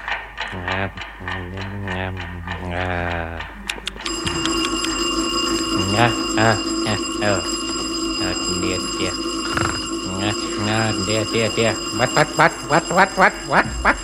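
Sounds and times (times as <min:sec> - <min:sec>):
speech: 0:00.5 - 0:03.6, 0:05.8 - 0:07.5, 0:08.2 - 0:14.0
alarm clock ringing with a steady metallic jangle in a house: 0:04.0 - 0:14.0.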